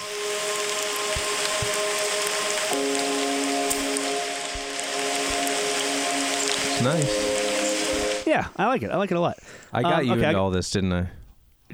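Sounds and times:
steady dense rain in a forest: 0.0s - 8.6s
speech: 6.8s - 7.3s, 8.3s - 11.2s.

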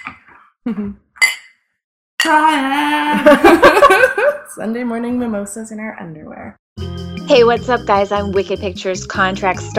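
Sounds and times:
speech: 0.7s - 1.1s, 2.2s - 9.7s
glasses clinking in a toast: 1.2s - 1.6s.

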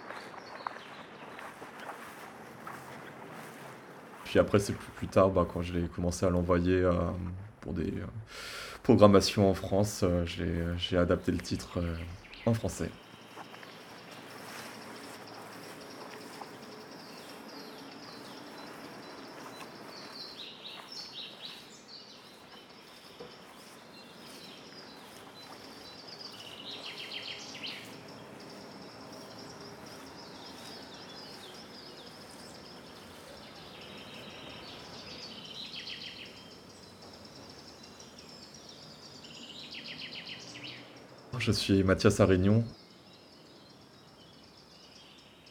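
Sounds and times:
speech: 4.3s - 13.0s, 41.5s - 42.8s
forest insects: 7.8s - 45.4s
bird chirps and calls in a forest: 11.0s - 45.4s.

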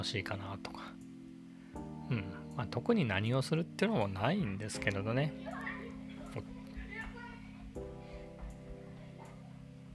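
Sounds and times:
speech: 0.0s - 1.1s, 1.7s - 5.6s, 6.3s - 6.5s
children's voices playing: 5.4s - 9.9s.

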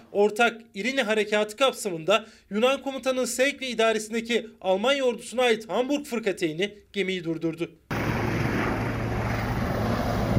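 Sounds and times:
speech: 0.1s - 7.9s
military helicopter roar landing on a ship: 7.9s - 10.3s.

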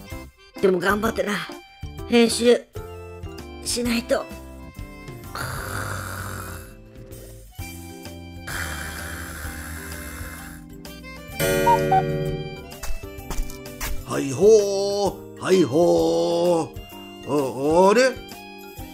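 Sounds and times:
speech: 0.6s - 2.7s, 3.6s - 4.4s, 11.4s - 12.4s, 14.1s - 18.2s
sleeping person snoring: 5.2s - 6.9s, 8.5s - 10.8s
steady tonal music: 11.4s - 12.8s.

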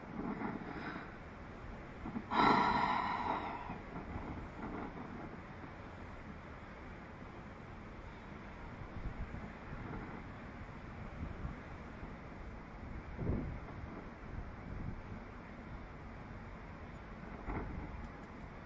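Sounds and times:
slow deep breath during a guided breathing exercise: 0.0s - 1.4s, 2.1s - 5.4s
steady rushing noise: 0.0s - 18.6s.

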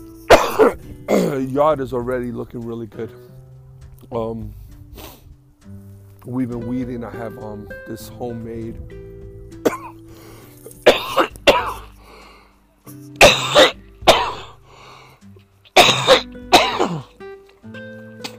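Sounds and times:
chesty coughing from allergies outdoors: 0.3s - 1.4s, 9.6s - 10.0s, 10.8s - 12.0s, 13.2s - 14.6s, 15.7s - 17.2s
speech: 0.6s - 3.4s, 4.1s - 5.1s, 6.2s - 9.0s.

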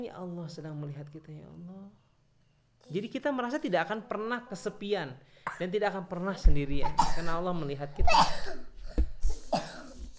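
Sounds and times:
speech: 0.0s - 2.1s, 2.8s - 8.7s
throaty coughs: 6.8s - 7.4s, 8.0s - 10.1s.

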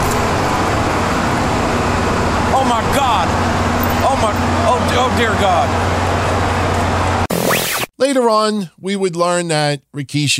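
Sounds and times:
car engine rumbling as car runs someone down: 0.0s - 7.3s
roaring road noise: 0.0s - 7.8s
speech: 2.7s - 3.5s, 4.2s - 5.9s, 8.0s - 10.3s.

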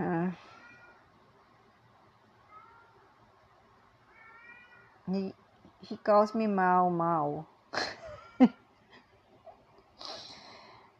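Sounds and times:
cat meowing: 4.1s - 5.0s
speech: 5.1s - 8.6s.

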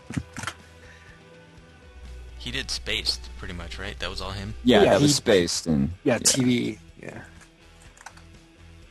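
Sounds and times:
speech: 2.4s - 7.4s
typing on a computer keyboard: 7.8s - 8.3s.

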